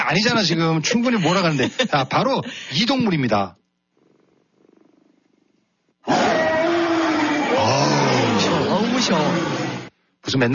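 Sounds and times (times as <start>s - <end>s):
speech: 0.1s - 3.6s, 10.3s - 10.5s
laughter: 0.3s - 2.9s
tiger roaring: 6.0s - 9.9s.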